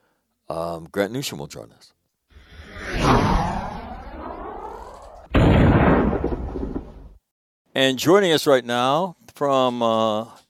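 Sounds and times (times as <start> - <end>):
speech: 0.5 - 2.0, 7.8 - 10.4
cinematic transition sweeping whoosh: 2.4 - 5.3
booming rumbling burst: 2.6 - 7.2.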